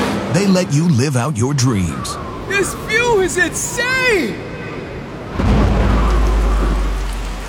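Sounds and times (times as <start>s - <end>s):
speech: 0.4s - 4.5s
deep roll of thunder: 2.0s - 7.4s
steady rain: 2.2s - 7.4s.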